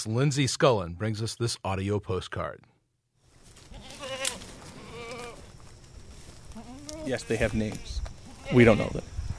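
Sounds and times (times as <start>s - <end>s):
speech: 0.0s - 2.7s, 7.1s - 9.1s
goats bleating while clearing brush in a backyard: 3.6s - 5.5s, 6.5s - 9.0s.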